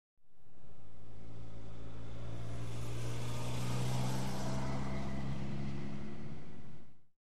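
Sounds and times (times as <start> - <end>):
car driving slowly by, exterior: 0.3 - 7.0.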